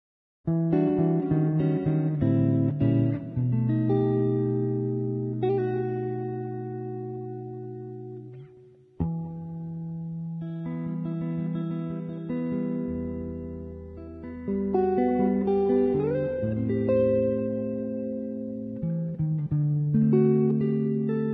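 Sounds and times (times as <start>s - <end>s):
electric guitar playing a jazz standard: 0.5s - 21.3s.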